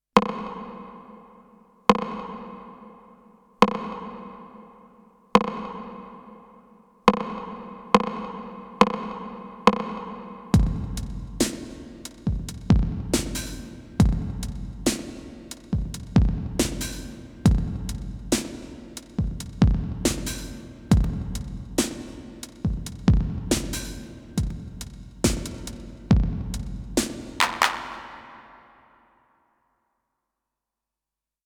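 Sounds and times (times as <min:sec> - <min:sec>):
TR909 drum machine through concert hall reverb: 0:00.2 - 0:29.0.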